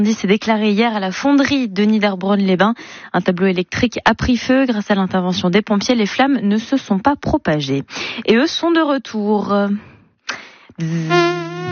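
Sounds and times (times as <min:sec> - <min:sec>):
speech: 0:00.0 - 0:11.7
human voice imitating a buzzing mosquito: 0:10.8 - 0:11.7.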